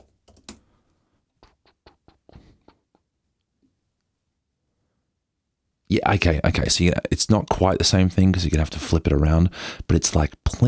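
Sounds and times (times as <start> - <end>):
typing on a computer keyboard: 0.0 - 0.7
speech: 6.0 - 10.6.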